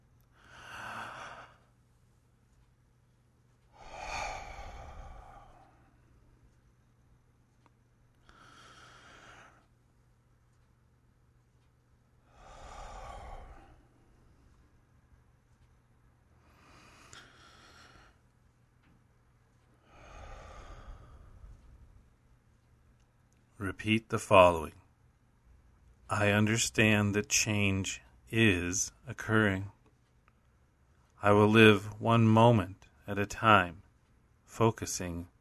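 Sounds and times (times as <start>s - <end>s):
slow deep breaths during a guided relaxation exercise: 0.2s - 2.6s, 3.5s - 6.7s, 7.6s - 10.6s, 12.1s - 22.7s
speech: 23.6s - 24.8s, 26.1s - 29.8s, 31.2s - 33.8s, 34.5s - 35.3s.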